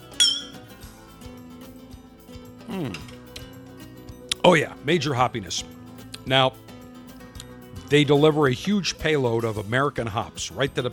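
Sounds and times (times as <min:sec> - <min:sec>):
Glencairn whisky glass clinking in a toast: 0:00.0 - 0:00.7
speech: 0:02.7 - 0:03.1, 0:04.4 - 0:06.6, 0:07.9 - 0:10.9.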